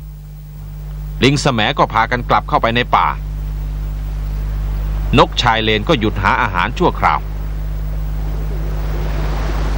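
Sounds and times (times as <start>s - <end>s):
speech: 1.2s - 3.3s, 5.1s - 7.3s
sea water flooding into a mangrove forest: 4.5s - 9.7s.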